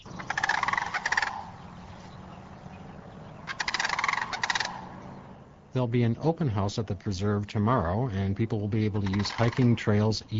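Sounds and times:
wild turkey gobbling at a nature preserve: 0:00.0 - 0:05.3, 0:08.8 - 0:10.1
speech: 0:05.8 - 0:10.3.

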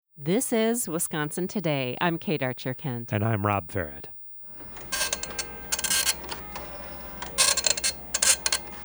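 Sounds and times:
speech: 0:00.2 - 0:04.2
old computer printer clacking while printing: 0:04.5 - 0:08.8.

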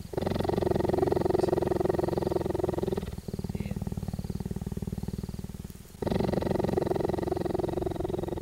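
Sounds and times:
cheetah purring while being petted: 0:00.0 - 0:08.4.

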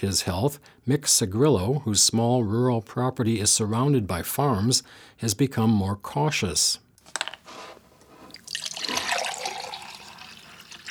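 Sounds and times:
speech: 0:00.0 - 0:06.8
clicks and handling noises of opening a water jug: 0:07.0 - 0:08.1
water glugging and splashing from a 5-gallon drinking water jug: 0:08.3 - 0:10.9.

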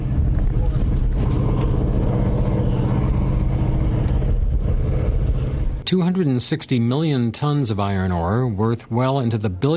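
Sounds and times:
huge ore-hauling trucks engine roar in iron ore mine in Michigan: 0:00.0 - 0:07.5
speech: 0:05.9 - 0:09.7.

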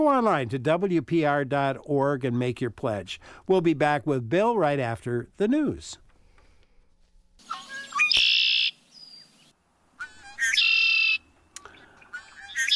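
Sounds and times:
speech: 0:00.0 - 0:06.0
red-winged blackbirds calling: 0:07.4 - 0:09.6, 0:10.2 - 0:12.7.

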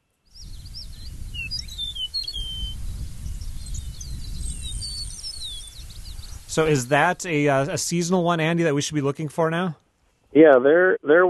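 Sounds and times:
eastern meadowlark singing clear slurred whistles: 0:00.3 - 0:08.3
chorus of other chirping birds: 0:00.3 - 0:09.6
steady low rumble of wind or outdoor noise: 0:00.4 - 0:08.2
speech: 0:06.6 - 0:11.2.

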